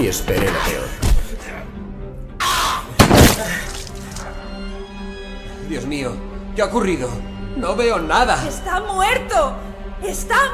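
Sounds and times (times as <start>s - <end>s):
speech: 0.0s - 1.2s, 5.7s - 10.5s
glass shattering during a violent struggle: 3.0s - 4.2s.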